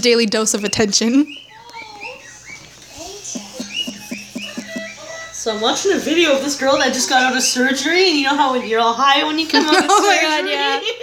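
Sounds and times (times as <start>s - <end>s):
speech: 0.0s - 1.4s, 5.4s - 11.0s
soft hum: 0.0s - 11.0s
pet bird chirping and whistling: 0.5s - 6.0s
laughter: 3.0s - 7.5s, 9.5s - 11.0s.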